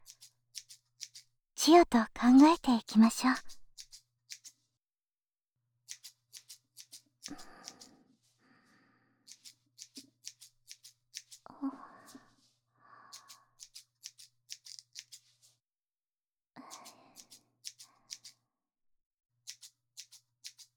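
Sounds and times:
scissors cutting hair: 0.0 - 4.6, 5.9 - 7.9, 9.3 - 11.5, 13.1 - 15.4, 16.7 - 18.4, 19.4 - 20.7
speech: 1.6 - 3.6.

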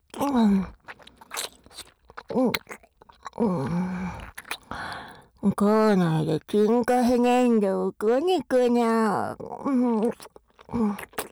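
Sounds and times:
chewing crunchy food: 0.0 - 5.4, 9.4 - 11.2
speech: 0.2 - 0.8, 2.3 - 2.8, 3.4 - 4.3, 5.4 - 11.2.

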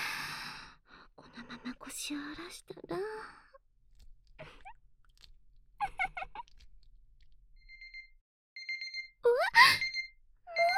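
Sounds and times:
speech: 2.0 - 3.4
soft wet mouth sounds: 3.9 - 7.4
electronic alarm clock beeping: 7.6 - 10.7.

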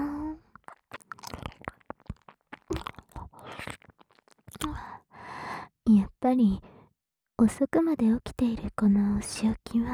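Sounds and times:
crunching and chewing hard candy: 0.4 - 5.0
speech: 5.9 - 6.7, 7.4 - 9.9.

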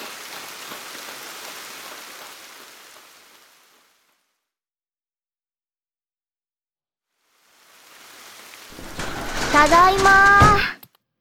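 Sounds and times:
dense hissing heavy downpour: 0.0 - 4.3, 7.2 - 10.7
speech: 9.6 - 10.2.

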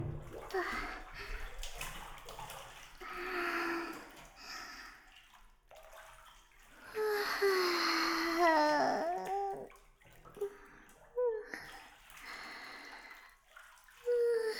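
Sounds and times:
water sloshing and splashing as people lower themselves into a hot bath: 0.0 - 14.5.

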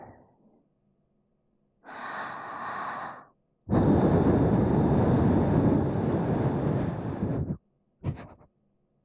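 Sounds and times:
breathy puffs of air blown into an ear after ear cleaning: 3.7 - 8.3.

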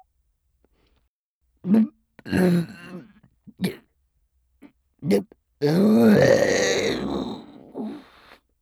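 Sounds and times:
speech: 1.7 - 2.8
long drawn-out rumbling burp: 1.7 - 3.8, 5.1 - 8.0
short throaty gulps and breaths: 5.6 - 8.3.

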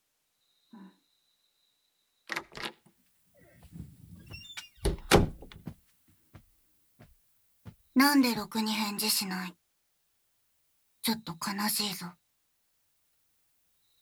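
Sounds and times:
door rattling and creaking open: 2.3 - 2.7, 3.6 - 5.8
heavy thunk: 3.6 - 5.8
knocking on a door: 3.7 - 5.7
speech: 8.0 - 9.6, 11.1 - 12.2.

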